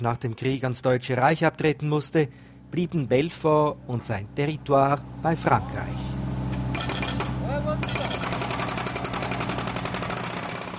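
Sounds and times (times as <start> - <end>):
speech: 0.0 - 6.1
construction machinery rumble: 2.3 - 8.4
jackhammer pounding at a city construction site: 6.6 - 10.7.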